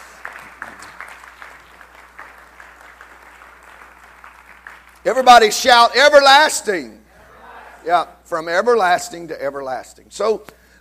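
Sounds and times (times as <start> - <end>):
congregation clapping hands: 0.0 - 5.8
speech: 5.0 - 7.0, 7.8 - 10.6
laughter: 7.1 - 7.9.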